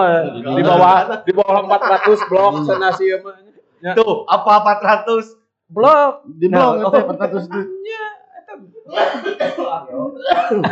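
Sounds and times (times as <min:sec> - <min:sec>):
laughter: 0:00.0 - 0:03.2, 0:06.6 - 0:07.8, 0:09.2 - 0:10.7
speech: 0:00.0 - 0:10.7
harsh raspy coughs into the microphone: 0:08.9 - 0:10.7.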